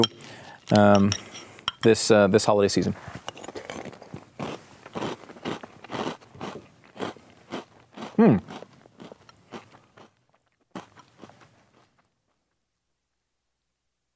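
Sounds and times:
speech: 0:00.7 - 0:03.3
chewing sugar-coated chocolate and peanut butter cereal clusters: 0:03.5 - 0:12.1.

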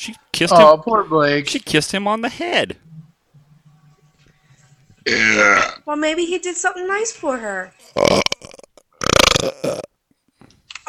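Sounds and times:
speech: 0:00.0 - 0:02.9, 0:05.0 - 0:08.6
person who has been eating chicken fingers, pizza and bagel bites burping: 0:05.0 - 0:05.8, 0:07.8 - 0:10.0.

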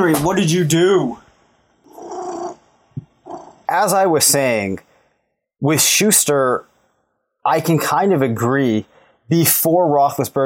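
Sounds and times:
speech: 0:00.0 - 0:01.2, 0:03.7 - 0:04.9, 0:05.6 - 0:06.7, 0:07.4 - 0:10.4
cat meowing: 0:01.9 - 0:02.6, 0:03.3 - 0:03.6.

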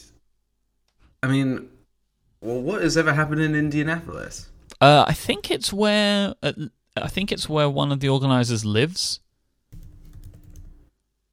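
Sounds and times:
speech: 0:01.2 - 0:01.8, 0:02.4 - 0:09.2
typing on a computer keyboard: 0:09.8 - 0:10.9.

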